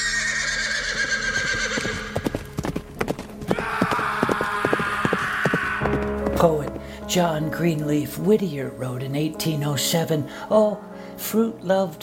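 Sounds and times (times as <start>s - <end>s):
horse whinnying loudly: 0.0s - 2.3s, 3.5s - 6.0s
horse hooves clip-clopping at a gallop: 0.3s - 7.6s
speech: 6.4s - 12.0s.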